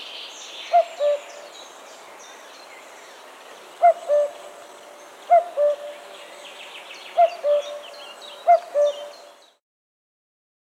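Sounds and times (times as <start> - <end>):
other birds twittering: 0.0 - 9.6
common cuckoo calling cu-coo: 0.7 - 1.4, 3.8 - 6.1, 7.1 - 9.4.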